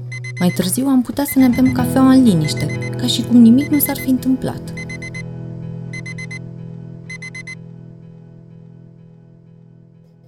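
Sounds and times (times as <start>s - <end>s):
alarm clock ringing with high-pitched beeps: 0.1s - 5.3s, 5.9s - 6.4s, 7.1s - 7.6s
speech: 0.4s - 4.8s.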